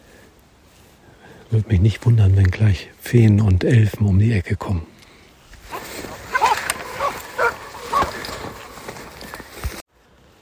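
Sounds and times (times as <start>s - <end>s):
speech: 1.5s - 4.9s
rustling and movement noise outdoors: 5.4s - 10.4s
hunting dogs barking at a bull: 5.7s - 9.2s.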